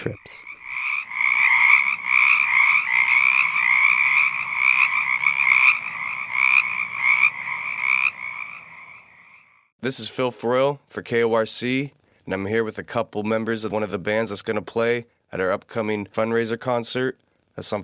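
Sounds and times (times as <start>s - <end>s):
speech: 0.0s - 0.5s, 9.8s - 17.8s
dense chorus of frogs croaking in the Willamette Valley: 0.0s - 9.7s.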